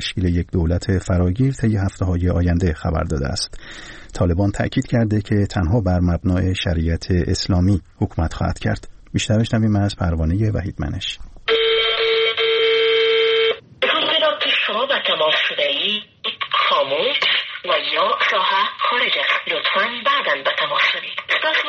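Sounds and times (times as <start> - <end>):
speech: 0.0 - 11.3, 15.9 - 16.1, 16.7 - 21.6
buzzy phone call tone: 11.5 - 13.6
telephone-filtered female voice in recorded message: 13.8 - 21.6.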